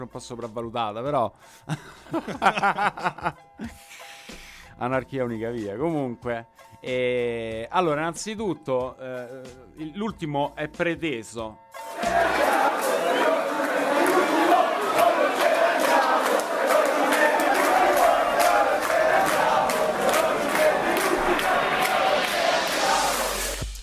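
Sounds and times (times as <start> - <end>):
speech: 0.0 - 12.9
laughter: 1.7 - 3.4, 12.0 - 23.2
loud dense crowd shouting and chattering in a radio jingle: 11.8 - 23.6.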